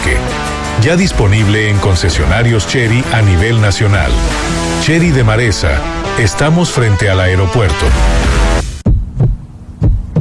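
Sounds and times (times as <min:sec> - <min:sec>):
speech: 0:00.8 - 0:08.7
loud low hum: 0:02.1 - 0:10.1
heartbeat sound effect: 0:08.1 - 0:10.1.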